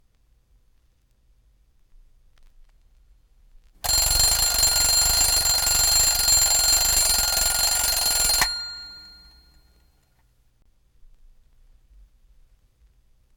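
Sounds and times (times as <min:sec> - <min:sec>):
alarm: 0:03.8 - 0:09.8.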